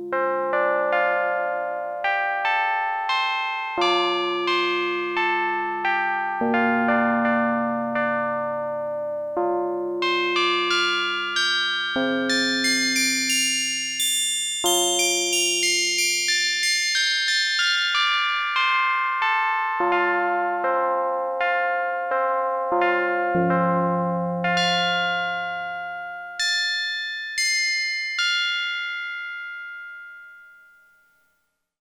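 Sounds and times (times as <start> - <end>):
Roland Jupiter-8 synthesizer chime factory patch: 0.1 - 30.7.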